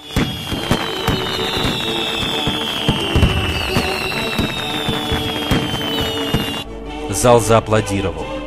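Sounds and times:
fireworks bursting over a concert audience: 0:00.0 - 0:06.6
high whistle gliding downward: 0:00.0 - 0:06.7
speech: 0:07.2 - 0:08.3.

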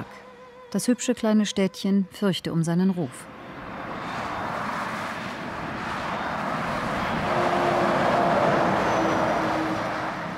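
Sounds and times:
speech: 0:00.7 - 0:03.4
heavy lorries thundering along a French national road: 0:03.2 - 0:10.3.

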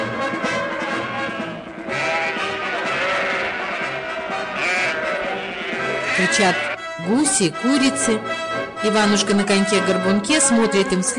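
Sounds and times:
goats bleating as they run off with cows: 0:00.6 - 0:06.9
speech: 0:06.2 - 0:11.1.

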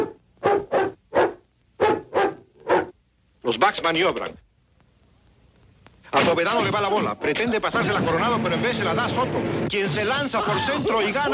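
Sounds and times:
cartoon dog barking signals during an American football game: 0:00.0 - 0:03.0
speech: 0:03.5 - 0:04.4, 0:06.1 - 0:11.3.

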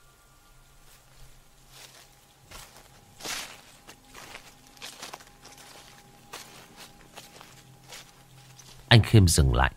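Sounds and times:
footsteps walking back and forth on sand and gravel outside a wooden door: 0:00.8 - 0:09.0
scuffing step: 0:01.7 - 0:08.9
speech: 0:09.0 - 0:09.7.

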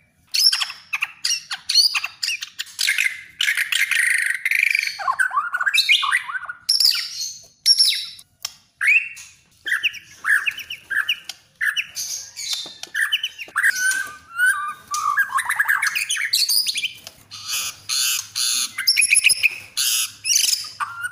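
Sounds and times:
Oriental magpie-robin singing sweet whistles and chirps: 0:00.3 - 0:08.2, 0:08.8 - 0:21.1.

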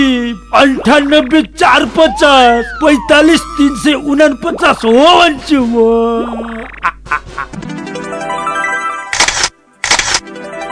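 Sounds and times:
speech: 0:00.3 - 0:07.2
camera shutter snaps taking a photo: 0:09.1 - 0:10.2.

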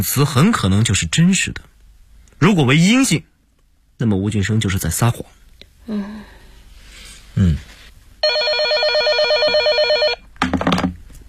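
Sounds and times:
speech: 0:00.0 - 0:01.8, 0:02.4 - 0:03.3, 0:04.0 - 0:06.4, 0:07.4 - 0:07.8
telephone ringing: 0:08.2 - 0:10.3.

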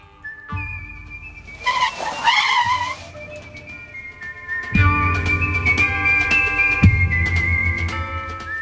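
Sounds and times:
brief squeal of Lamborghini tires: 0:00.6 - 0:08.3
red solar-powered Lamborghini engine rumbling and revving while parking: 0:01.0 - 0:04.7.

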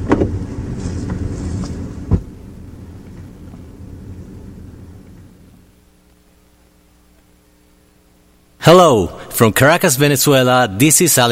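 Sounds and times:
car engine rumbling while being driven off: 0:00.0 - 0:05.8
speech: 0:08.7 - 0:11.3.

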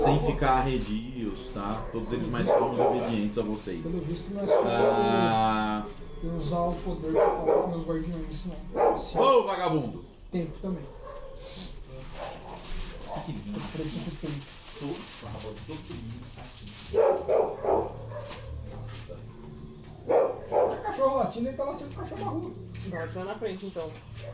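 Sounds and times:
dog barking in the street: 0:00.0 - 0:00.3, 0:01.7 - 0:03.3, 0:04.4 - 0:05.3, 0:07.0 - 0:07.8, 0:08.7 - 0:09.5, 0:10.8 - 0:13.4, 0:16.9 - 0:19.0, 0:20.0 - 0:21.1
speech: 0:00.0 - 0:11.7, 0:13.3 - 0:17.4, 0:21.0 - 0:24.3.

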